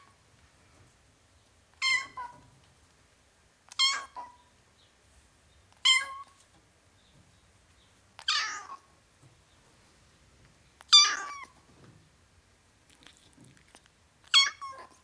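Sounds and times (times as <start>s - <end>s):
ten-week-old domestic kitten meowing: 8.2s - 8.8s, 10.9s - 11.5s, 14.3s - 15.0s.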